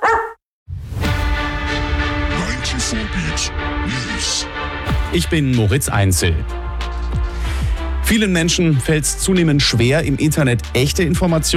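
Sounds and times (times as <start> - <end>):
dog bark in a pet-supply store advert jingle: 0.0 - 0.4
pet-supply store advert jingle music: 1.0 - 11.5
speech: 2.9 - 7.3, 8.1 - 11.5.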